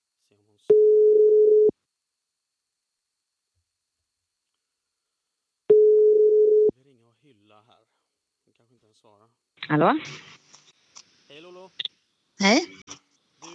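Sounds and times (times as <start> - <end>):
telephone ringback tone while calling a sister: 0.7 - 1.7, 5.7 - 6.7
speech: 8.8 - 10.4, 12.4 - 13.5.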